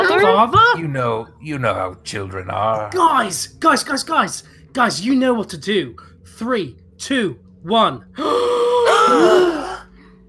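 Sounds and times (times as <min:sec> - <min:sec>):
speech: 0:00.2 - 0:08.5, 0:09.1 - 0:09.6
several people making strained strangled groaning noises: 0:08.2 - 0:10.0.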